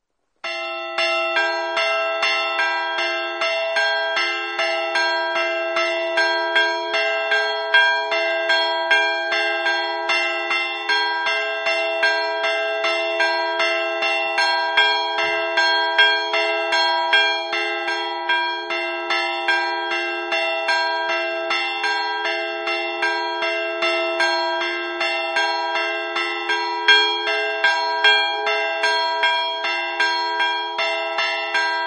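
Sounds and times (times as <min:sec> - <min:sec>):
bells in Azzano: 0:00.4 - 0:31.8.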